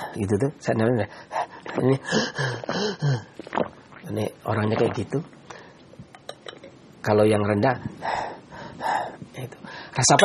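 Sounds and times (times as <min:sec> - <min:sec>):
speech: 0:00.2 - 0:05.4, 0:07.0 - 0:08.2, 0:09.4 - 0:10.2
person imitating wheezy high-pitched panting: 0:01.2 - 0:03.4.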